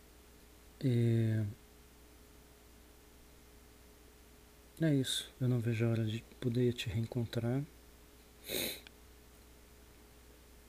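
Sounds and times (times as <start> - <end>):
speech: 0.8 - 1.6, 4.8 - 7.8, 8.4 - 8.8
sharp wet congested nasal sniff from a cold: 8.4 - 8.9.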